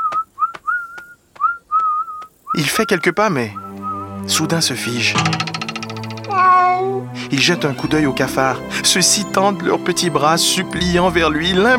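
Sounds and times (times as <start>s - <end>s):
soft steps or taps: 0.0s - 2.4s
person whistling a cheerful little tune while walking away: 0.0s - 4.2s
speech: 2.5s - 3.6s, 4.3s - 5.6s, 6.3s - 11.7s.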